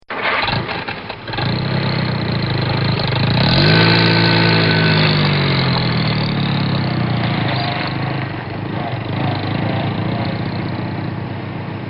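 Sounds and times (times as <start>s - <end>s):
Dodge Stealth starting and pulling away: 0.1s - 11.8s.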